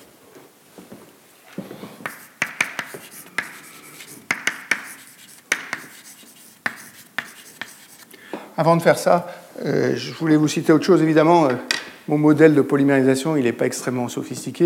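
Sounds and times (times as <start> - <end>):
sharp taps while writing equations by hand: 2.0 - 3.6, 4.3 - 7.8
scratchy strokes of equations being written by hand: 2.0 - 8.1
speech: 8.6 - 14.6.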